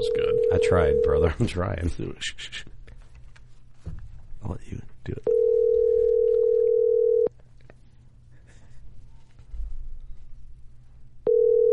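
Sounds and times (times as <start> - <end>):
ringback tone of an unanswered outgoing telephone call: 0.0 - 1.2, 5.3 - 7.3, 11.3 - 11.7
speech: 0.0 - 2.7, 4.4 - 5.4
faint noise: 0.0 - 11.7.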